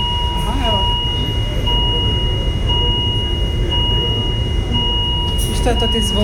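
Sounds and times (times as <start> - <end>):
heavy rumble of a moving train or vehicle: 0.0 - 6.2
steady continuous electronic alarm tone: 0.0 - 6.2
voices: 0.0 - 6.2.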